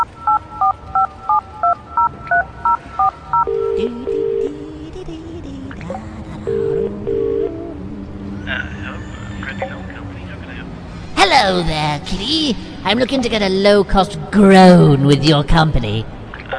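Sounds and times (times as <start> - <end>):
touch-tone telephone dialing beeps: 0.0 - 4.4
telephone ringback tones on the line: 0.0 - 4.6, 6.5 - 7.6
speech: 11.4 - 16.2.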